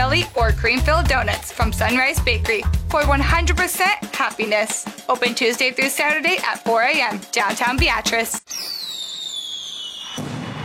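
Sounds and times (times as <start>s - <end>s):
speech: 0.1s - 8.8s
firework whistle falling in pitch: 8.5s - 10.6s.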